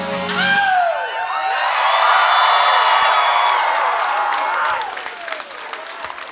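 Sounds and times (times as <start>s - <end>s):
concert crowd cheering and whooping: 0.2s - 6.3s
concert crowd shouts and whistles: 0.3s - 5.0s.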